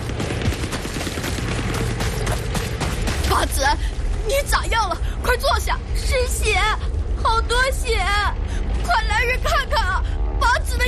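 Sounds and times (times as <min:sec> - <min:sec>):
machine gun fire at a river crossing: 0:00.0 - 0:03.3
heavy low rumble: 0:00.0 - 0:10.8
speech: 0:03.4 - 0:10.8.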